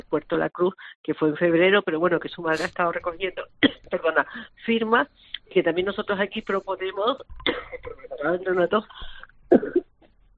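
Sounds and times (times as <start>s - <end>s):
speech: 0.1s - 9.8s
person coughing: 9.0s - 9.9s.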